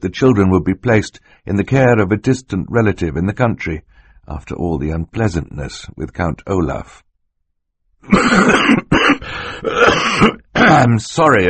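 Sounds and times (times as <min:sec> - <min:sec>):
speech: 0:00.0 - 0:07.1, 0:08.0 - 0:08.9, 0:09.6 - 0:11.4
person clearing throat: 0:08.0 - 0:10.9
person coughing in a rough continuous fit: 0:08.0 - 0:10.9.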